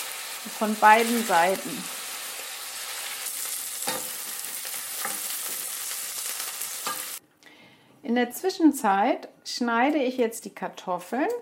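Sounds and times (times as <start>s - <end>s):
streaky bacon sizzling and spitting in a hot pan: 0.0s - 7.2s
speech: 0.5s - 2.0s, 8.0s - 11.3s.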